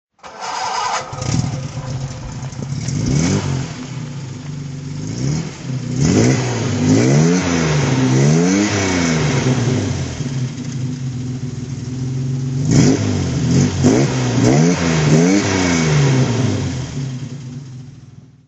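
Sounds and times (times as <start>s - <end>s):
Jaguar XK150 S FHC engine throttle: 0.2s - 17.8s.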